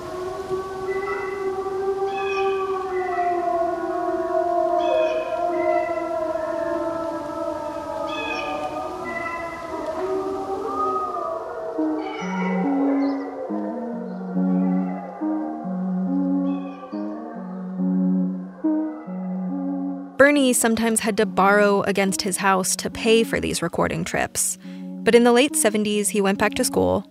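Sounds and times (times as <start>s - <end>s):
wolves howling: 0.0s - 22.6s
speech: 20.3s - 27.0s.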